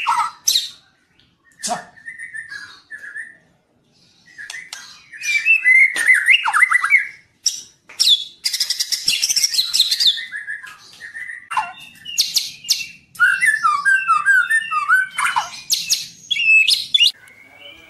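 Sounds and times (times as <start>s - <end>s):
white-rumped shama song: 0.0s - 17.8s.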